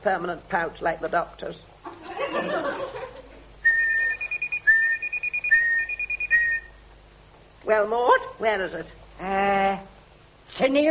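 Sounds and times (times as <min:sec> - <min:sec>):
speech: 0:00.0 - 0:01.7, 0:02.3 - 0:03.0, 0:07.6 - 0:09.9, 0:10.5 - 0:10.8
laughter: 0:01.9 - 0:03.5
person whistling a short bouncy tune: 0:03.6 - 0:06.7.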